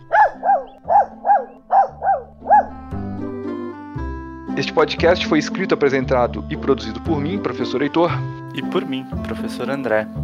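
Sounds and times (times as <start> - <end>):
dog barking: 0.0 - 2.9
speech: 4.6 - 10.2.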